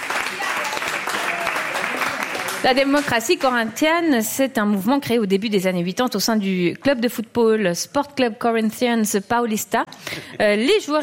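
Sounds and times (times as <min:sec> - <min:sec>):
audience applause for a correct quiz answer: 0:00.0 - 0:03.5
speech: 0:02.6 - 0:11.0.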